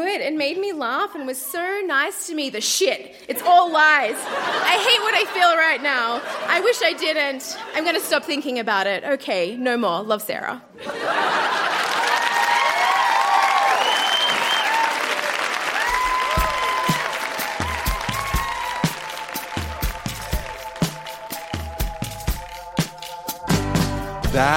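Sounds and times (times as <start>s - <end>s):
speech: 0.0s - 11.5s, 24.4s - 24.5s
laughter: 3.4s - 8.4s, 10.8s - 12.7s
audience clapping: 11.3s - 23.6s
audience cheers and whoops: 12.0s - 20.5s.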